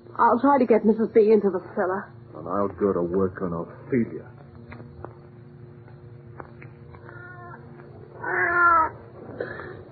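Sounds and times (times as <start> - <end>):
speech: 0.2 - 4.4
cat meowing: 7.1 - 7.6, 8.2 - 9.0.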